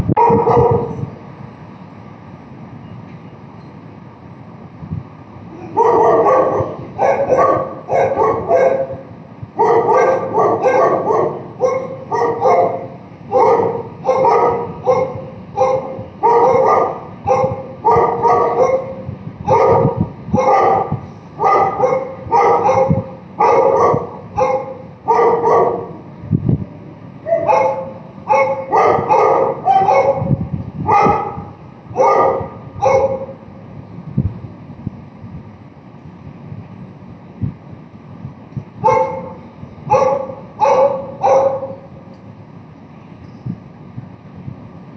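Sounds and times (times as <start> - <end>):
dog barking: 0.2 - 1.1, 5.6 - 26.0, 27.3 - 33.4, 38.8 - 41.9.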